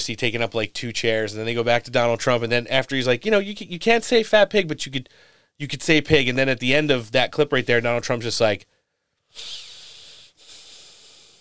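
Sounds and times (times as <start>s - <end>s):
speech: 0.0s - 8.7s, 9.3s - 9.6s
person imitating heavy breathing into a microphone: 5.1s - 5.6s, 8.7s - 11.3s.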